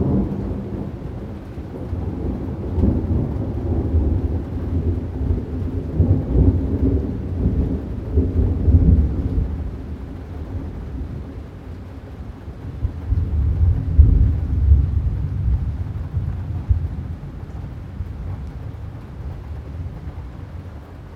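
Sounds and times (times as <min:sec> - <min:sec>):
deep rolling thunder in a summer storm: 0:00.0 - 0:11.4, 0:12.5 - 0:21.1
steady low hiss of rain in a summer storm: 0:00.0 - 0:21.1.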